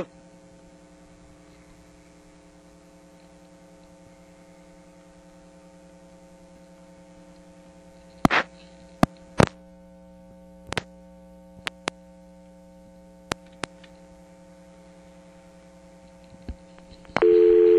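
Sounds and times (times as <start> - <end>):
telephone dial tone on a payphone line: 17.2 - 17.7.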